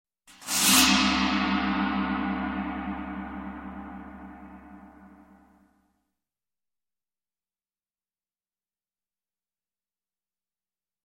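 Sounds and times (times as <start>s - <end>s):
gong grinding: 0.4s - 5.6s.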